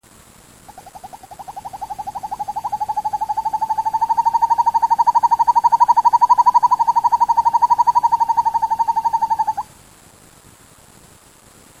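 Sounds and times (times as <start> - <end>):
Surnia ulula calling: 0.7 - 9.7.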